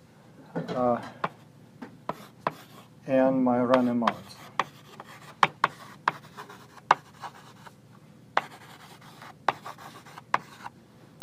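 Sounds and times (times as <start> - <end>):
speech: 0.6 - 1.2, 3.1 - 4.4
taps of dots being drawn on a board: 2.1 - 2.7, 3.7 - 7.1, 9.5 - 10.6.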